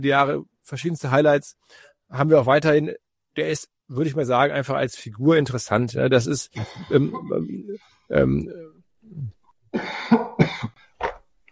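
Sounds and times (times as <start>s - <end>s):
speech: 0.0s - 10.8s
person's habitual harsh cough with throaty voiced rasps: 6.6s - 7.1s, 9.1s - 11.2s.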